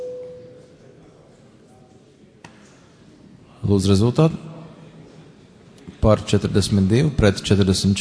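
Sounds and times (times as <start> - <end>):
parliamentary electronic voting bell tone: 0.0 - 0.6
speech: 3.7 - 4.5, 6.0 - 7.9.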